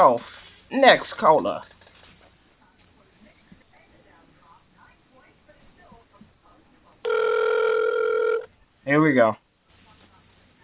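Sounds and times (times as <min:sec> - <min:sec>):
speech: 0:00.0 - 0:01.7, 0:08.8 - 0:09.4
phone outgoing ring tone heard over the line: 0:07.0 - 0:08.5.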